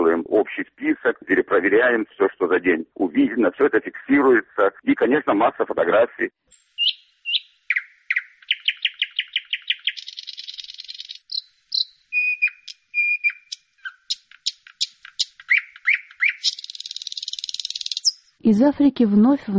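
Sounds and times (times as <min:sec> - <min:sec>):
speech: 0:00.5 - 0:06.6, 0:18.4 - 0:19.5
Eurasian bullfinch calling and singing: 0:06.6 - 0:18.4.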